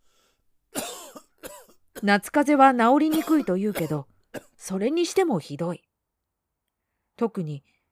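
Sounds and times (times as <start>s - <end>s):
harsh throaty coughs: 0.7s - 2.2s, 3.1s - 4.6s
speech: 2.0s - 5.9s, 7.2s - 7.8s.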